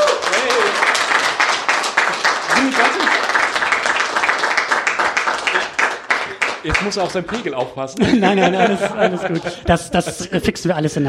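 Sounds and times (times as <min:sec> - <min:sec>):
audience applauding: 0:00.0 - 0:07.9
laughter: 0:02.5 - 0:03.3, 0:07.9 - 0:10.9
speech: 0:06.6 - 0:11.0.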